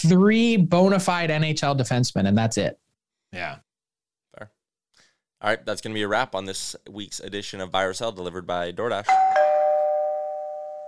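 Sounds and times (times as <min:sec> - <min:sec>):
speech: 0:00.0 - 0:03.6, 0:04.4 - 0:04.6, 0:05.4 - 0:09.4
doorbell chime with a clear bright tone: 0:09.1 - 0:10.8.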